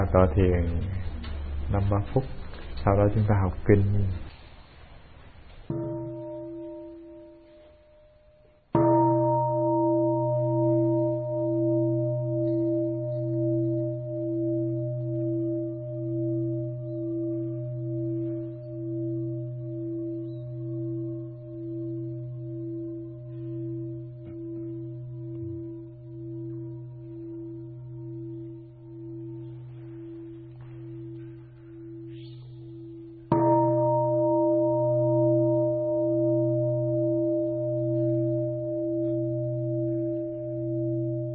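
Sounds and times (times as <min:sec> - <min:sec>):
speech: 0:00.1 - 0:01.0, 0:01.7 - 0:04.3
meditation bell struck during a Buddhist sitting session: 0:05.7 - 0:41.3.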